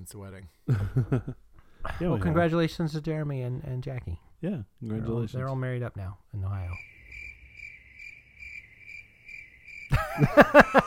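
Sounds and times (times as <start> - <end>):
speech: 0.1 - 6.9, 10.2 - 10.8
laughter: 0.7 - 1.4, 9.9 - 10.8
crickets chirping in a high continuous trill: 5.5 - 10.8.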